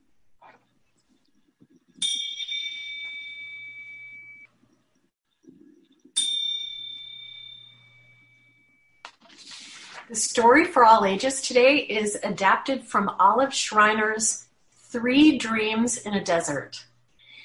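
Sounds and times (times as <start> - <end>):
faint low room noise: 0.0 - 17.4
meditation chime ringing: 2.0 - 4.6, 6.0 - 9.0
speech: 10.1 - 16.9.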